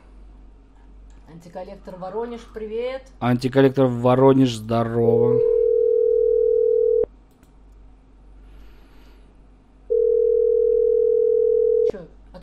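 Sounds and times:
speech: 0:01.3 - 0:05.6
telephone line busy tone beeps: 0:05.5 - 0:07.1, 0:09.9 - 0:11.9.

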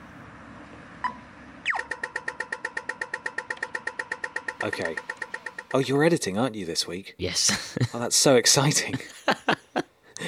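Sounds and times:
street traffic rumbling: 0:00.0 - 0:07.0
pedestrian crossing signal zap and clicking beeps: 0:01.0 - 0:05.8
speech: 0:04.6 - 0:09.2
laughter: 0:07.5 - 0:10.2.

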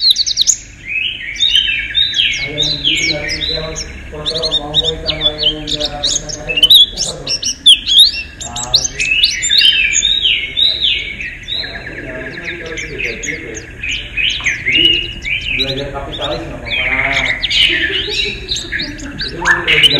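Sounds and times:
steady faint hum: 0:00.0 - 0:19.9
white-eye song of rapid high twittering and chirping notes: 0:00.0 - 0:19.9
laughter: 0:02.4 - 0:09.2, 0:10.4 - 0:19.9.

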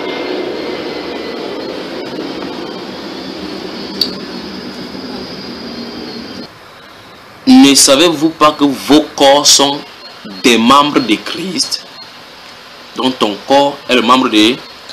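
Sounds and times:
airplane passing overhead: 0:00.0 - 0:07.5
speech: 0:07.5 - 0:11.8, 0:13.0 - 0:14.9.

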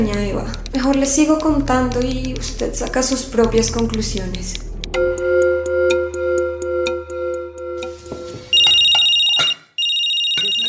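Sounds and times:
speech: 0:00.0 - 0:04.7
mobile phone electronic ringtone: 0:05.0 - 0:10.6.

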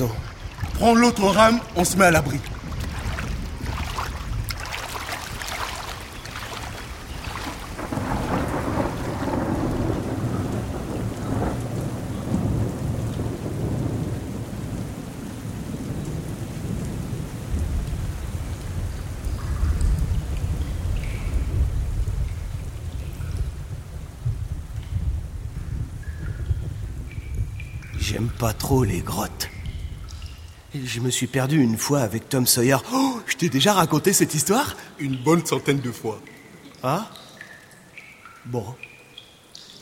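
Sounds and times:
speech: 0:00.0 - 0:00.2, 0:00.8 - 0:02.6, 0:28.4 - 0:29.6, 0:30.7 - 0:37.2, 0:38.4 - 0:38.9
thunder rumbling in an approaching thunderstorm over a river: 0:00.0 - 0:30.8
heavy rain pouring over a river: 0:00.0 - 0:39.8.

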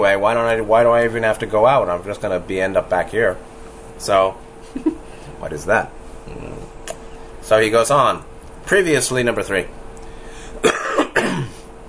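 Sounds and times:
speech: 0:00.0 - 0:06.8, 0:07.5 - 0:09.8
forceful coughs with rough throaty tail: 0:10.6 - 0:11.7.

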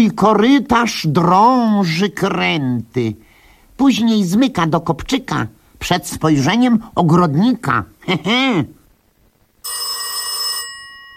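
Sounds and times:
speech: 0:00.0 - 0:03.2, 0:03.8 - 0:08.8
telephone ringing with a bright electronic burst: 0:09.6 - 0:11.1.

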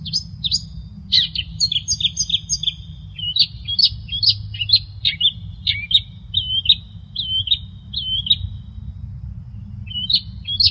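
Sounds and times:
long-tailed shrike song: 0:00.0 - 0:08.6, 0:09.8 - 0:10.6
constant low hum: 0:00.0 - 0:10.6.

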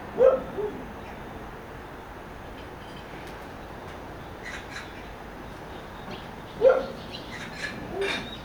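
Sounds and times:
dog barking in rural residential Seoul: 0:00.1 - 0:00.9, 0:06.5 - 0:08.4.

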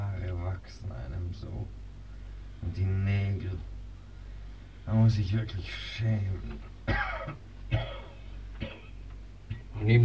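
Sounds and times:
low steady hum: 0:00.0 - 0:10.0
speech: 0:02.6 - 0:03.8, 0:04.9 - 0:07.5, 0:09.8 - 0:10.0
short faint coughs: 0:06.6 - 0:09.6.

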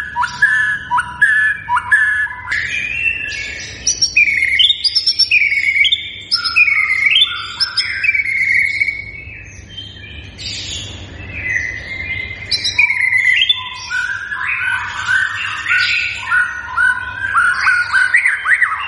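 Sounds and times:
white-rumped shama singing looping whistles and buzzy notes: 0:00.0 - 0:18.8.

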